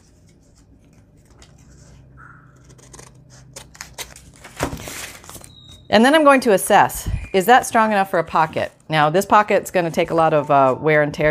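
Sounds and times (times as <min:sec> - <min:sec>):
scissors snipping through paper scraps: 0:02.6 - 0:05.1
speech: 0:05.9 - 0:11.2.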